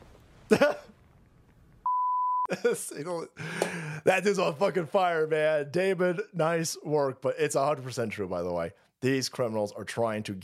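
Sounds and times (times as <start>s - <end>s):
speech: 0.5s - 0.9s, 2.5s - 10.4s
steady loud electronic beep at a single pitch: 1.9s - 2.5s.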